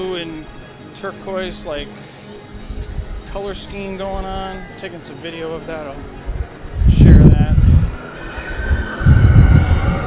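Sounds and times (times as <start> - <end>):
speech: 0.2 - 2.5, 3.3 - 6.2
roller-coaster train of light-cycle ride vehicles passing overhead: 6.7 - 10.0.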